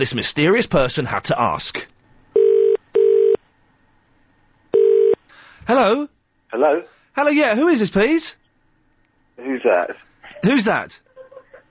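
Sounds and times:
speech: 0:00.0 - 0:01.9, 0:05.7 - 0:08.4, 0:09.4 - 0:11.0
telephone ringing tone on a dialed call: 0:02.4 - 0:03.4, 0:04.7 - 0:05.2
laughter: 0:10.2 - 0:11.6.

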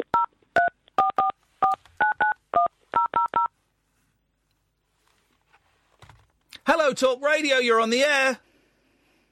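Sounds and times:
DTMF tones of a telephone number being dialed: 0:00.1 - 0:03.5
speech: 0:06.9 - 0:08.5.

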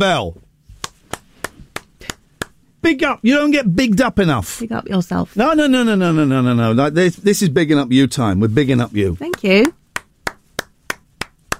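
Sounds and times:
speech: 0:00.0 - 0:00.4, 0:02.8 - 0:09.8
single person clapping: 0:00.8 - 0:02.6, 0:09.3 - 0:11.5.

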